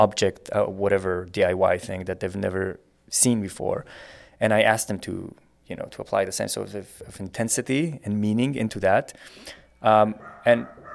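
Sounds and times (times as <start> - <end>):
speech: 0.0 - 10.8
dog barking at visitor: 10.2 - 10.9.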